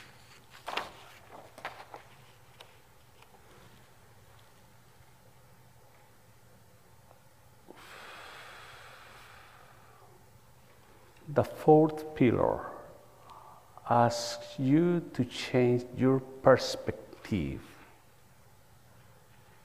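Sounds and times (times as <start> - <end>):
deep breathing during a church service reflection: 7.7 - 10.2, 13.0 - 13.8
speech: 11.4 - 12.7, 13.9 - 17.7.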